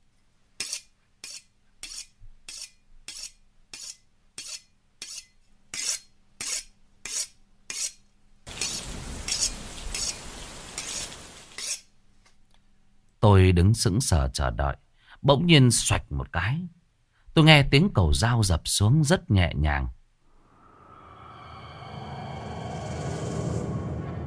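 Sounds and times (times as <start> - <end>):
butcher's knife drawn across a whetstone: 0.6 - 10.2, 10.8 - 11.9
speech: 13.3 - 16.8, 17.4 - 20.0.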